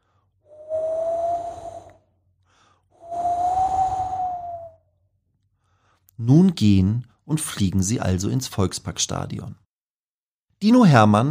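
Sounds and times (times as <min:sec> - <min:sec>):
cold wind gusts with a thin whistling tone: 0:00.5 - 0:02.0, 0:03.0 - 0:04.8
speech: 0:06.2 - 0:09.6, 0:10.6 - 0:11.2.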